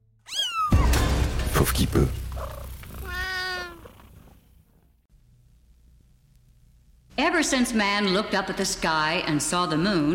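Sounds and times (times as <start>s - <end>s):
cat meowing: 0.3s - 1.0s, 2.5s - 4.0s
speech: 1.6s - 2.2s, 7.5s - 10.1s.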